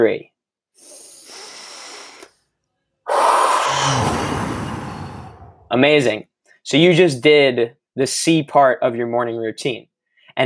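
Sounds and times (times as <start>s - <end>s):
speech: 0.0s - 1.0s, 3.9s - 4.2s, 5.7s - 10.4s
deep breath in through the nose: 0.8s - 2.4s, 3.1s - 5.7s.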